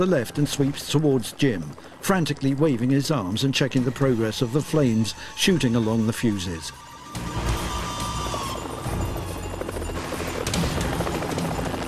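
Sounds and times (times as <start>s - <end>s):
helicopter rotor thumping, flying forward low over ground: 0.0s - 4.4s, 7.2s - 11.8s
speech: 0.0s - 7.3s
helicopter engine whine: 0.0s - 11.8s.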